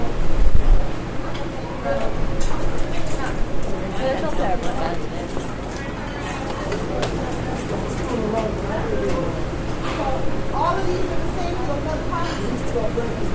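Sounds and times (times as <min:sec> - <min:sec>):
murmur of overlapping conversation from many people at brunch: 0:00.0 - 0:13.3
dishes and cutlery clinking: 0:02.3 - 0:09.2.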